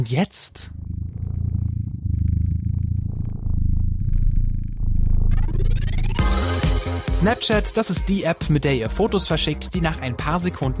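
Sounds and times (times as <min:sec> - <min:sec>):
speech: 0:00.0 - 0:00.8, 0:07.2 - 0:10.7
synthesized cat purring from a purr generator: 0:00.1 - 0:07.1.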